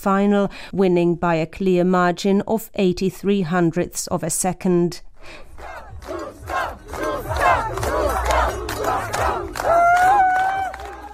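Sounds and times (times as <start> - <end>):
speech: 0.0 - 7.9
large crowd cheering and shouting at ski race finish: 5.5 - 11.1.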